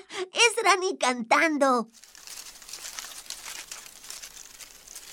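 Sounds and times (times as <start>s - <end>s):
speech: 0.2s - 2.1s
insects in a forest rustling under fallen leaves during heavy rain: 1.9s - 5.1s.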